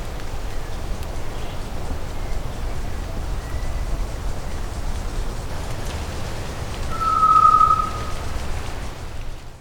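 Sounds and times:
low rumbling background noise: 0.0 - 9.5
solitary tinamou whistling in Cantareira State Park, Brazil: 6.9 - 8.2.

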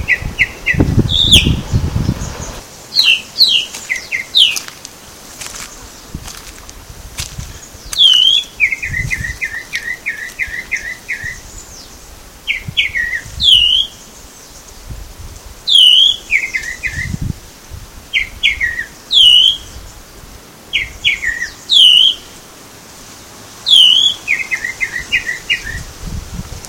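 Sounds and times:
Tropical mockingbird Mimus gilvus singing at Baby Beach in Aruba: 0.0 - 4.7, 7.4 - 14.8, 15.7 - 17.2, 18.1 - 19.9, 20.7 - 22.4, 23.6 - 25.9.

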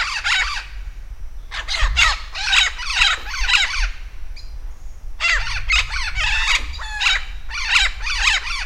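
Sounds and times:
Vinaceous-breasted amazon calling in squawking bursts in Campos do Jordão, Brazil: 0.0 - 0.7, 1.5 - 4.0, 5.2 - 8.6.

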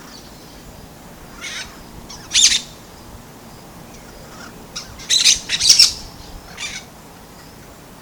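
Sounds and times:
brown-throated parakeet screeching in Bubali Aruba: 1.3 - 2.8, 4.0 - 6.9.

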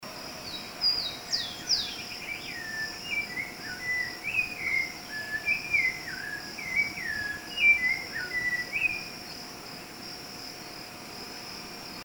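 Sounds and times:
Turdus rufiventris calling: 0.9 - 9.1.

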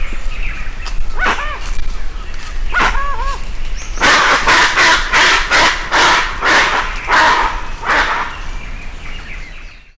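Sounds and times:
dusky-legged guan yelping and honking: 2.7 - 3.4, 4.0 - 8.5.

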